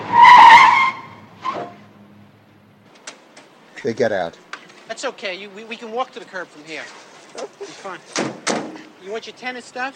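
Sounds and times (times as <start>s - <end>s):
car tires squealing as a car angles into a parking space on a quiet side street: 0.0s - 1.8s
speech: 3.8s - 8.4s, 9.0s - 9.9s.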